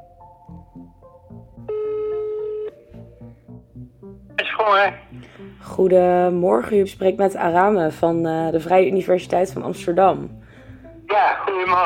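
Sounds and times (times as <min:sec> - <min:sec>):
soft rhythmic background: 0:00.0 - 0:11.8
telephone ringing signal: 0:01.7 - 0:02.8
brief burst of voice on the telephone line: 0:04.4 - 0:05.1, 0:11.1 - 0:11.8
speech: 0:04.6 - 0:10.4, 0:11.2 - 0:11.8.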